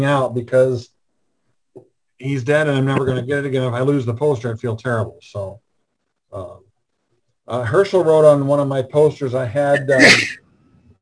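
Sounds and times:
speech: 0.0s - 1.0s, 2.2s - 5.6s, 6.3s - 6.6s, 7.5s - 10.4s
sharp sneeze: 9.8s - 10.4s.

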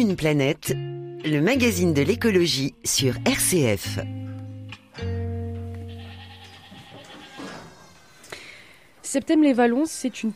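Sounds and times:
speech: 0.0s - 4.2s, 9.1s - 10.3s
farmyard noise: 5.7s - 8.3s
goats bleating at a goat farm: 5.8s - 8.0s.

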